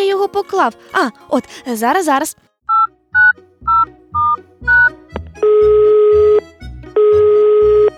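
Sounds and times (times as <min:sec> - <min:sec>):
speech: 0:00.3 - 0:02.9
touch-tone beeps dialed on a telephone: 0:02.7 - 0:06.4, 0:07.0 - 0:07.9.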